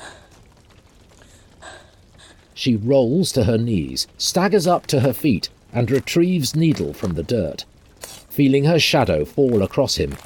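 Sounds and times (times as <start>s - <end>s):
person panting after hauling themselves up over a rock ledge: 0.0s - 0.4s, 1.2s - 2.5s
speech: 2.6s - 7.7s, 8.4s - 10.2s.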